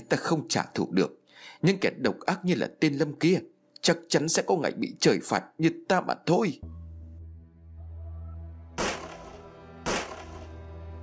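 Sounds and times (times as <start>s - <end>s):
speech: 0.1s - 6.8s
gunshots: 8.8s - 10.6s.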